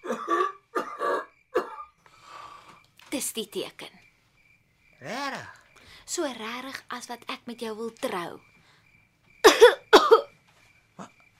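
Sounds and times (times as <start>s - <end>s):
person coughing: 0.0s - 1.9s, 9.4s - 10.3s
speech: 3.2s - 4.0s, 5.0s - 8.5s.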